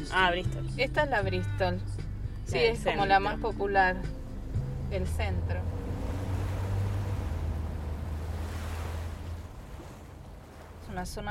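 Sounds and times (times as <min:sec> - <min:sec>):
speech: 0:00.0 - 0:04.2, 0:04.9 - 0:05.8, 0:11.0 - 0:11.2
ocean surf at a city beach: 0:04.0 - 0:11.2
wind buffeting: 0:04.1 - 0:11.2.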